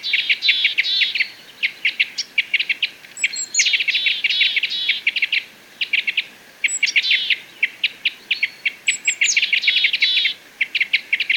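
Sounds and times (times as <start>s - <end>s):
parrot crossbill chip calls: 0.0s - 11.3s.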